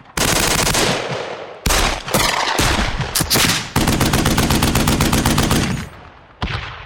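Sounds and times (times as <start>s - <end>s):
rapid automatic gunfire sound effects: 0.2s - 1.1s, 1.7s - 6.0s.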